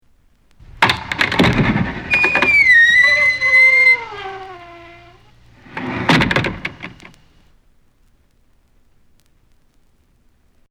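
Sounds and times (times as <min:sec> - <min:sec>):
door squeaking: 0:00.6 - 0:07.4.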